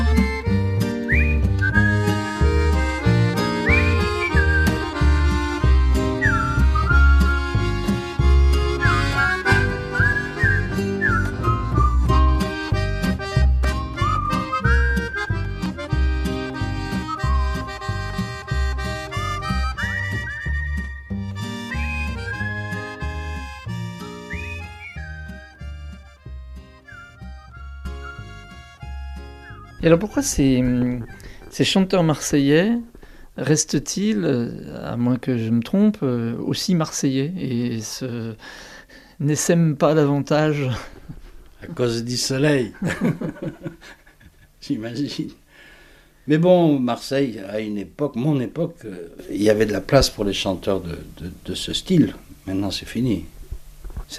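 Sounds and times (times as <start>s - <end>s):
full instrumental backing music: 0.0s - 31.7s
person whistling a bright wandering tune: 1.0s - 2.8s, 3.4s - 7.8s, 8.8s - 12.8s, 13.6s - 15.8s, 16.6s - 26.1s, 26.7s - 29.8s
speech: 29.9s - 41.0s, 41.6s - 44.0s, 44.6s - 45.4s, 46.3s - 53.3s
laughter: 42.8s - 44.5s.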